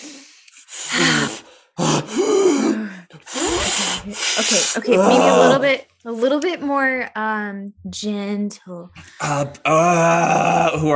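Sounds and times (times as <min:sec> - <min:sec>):
loud forceful deep breaths as a breathing exercise: 0:00.0 - 0:04.8
speech: 0:04.1 - 0:10.9.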